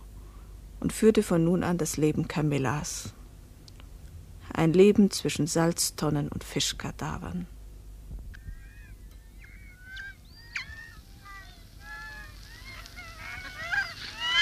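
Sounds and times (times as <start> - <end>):
speech: 0.8 - 3.2, 4.6 - 7.6
seagulls calling: 8.4 - 14.4.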